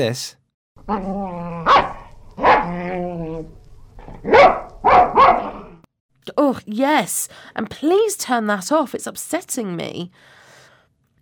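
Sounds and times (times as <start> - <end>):
speech: 0.0 - 1.8, 6.4 - 10.4
dog growling: 0.8 - 5.9
dog barking aggressively: 1.6 - 2.8, 4.2 - 5.8.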